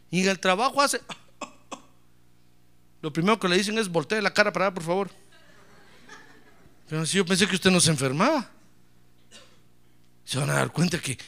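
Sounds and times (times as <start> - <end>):
speech: 0.1 - 1.2, 3.0 - 5.2, 6.9 - 8.6, 10.3 - 11.2
laughter: 5.1 - 6.9
short dry coughs: 9.2 - 9.7.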